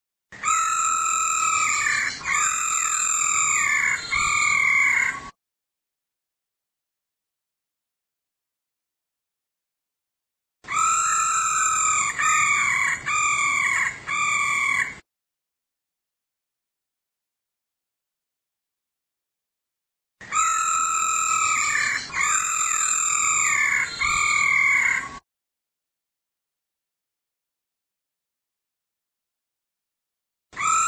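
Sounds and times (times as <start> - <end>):
female laughingthrush calling: 0.4 - 5.3, 10.7 - 15.0, 20.2 - 25.2, 30.6 - 30.8.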